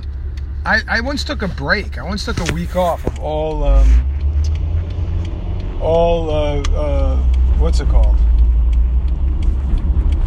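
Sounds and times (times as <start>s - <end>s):
car engine rumble inside a moving vehicle making a turn: 0.0s - 10.2s
road noise from inside a moving vehicle: 0.0s - 10.2s
speech: 0.7s - 4.1s, 5.8s - 8.2s
faint higher ticks or clicks: 3.2s - 10.2s.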